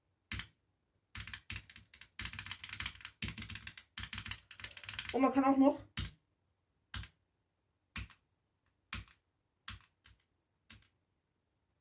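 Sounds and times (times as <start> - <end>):
key presses on a backlit computer keyboard: 0.3 - 5.2, 5.8 - 6.2, 6.9 - 7.2, 7.9 - 8.3, 8.9 - 11.0
speech: 5.1 - 5.9.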